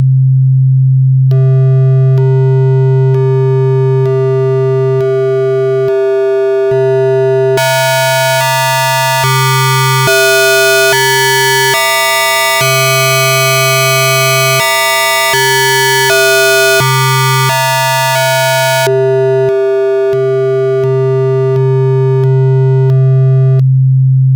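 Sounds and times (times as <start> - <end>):
sine tone with varying gain folding: 0.0 - 24.3.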